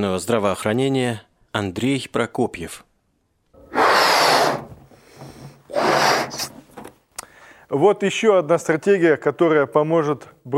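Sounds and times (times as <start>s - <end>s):
speech: 0.0s - 2.9s, 7.7s - 10.5s
deep breathy exhalations: 3.6s - 6.6s, 7.2s - 7.7s.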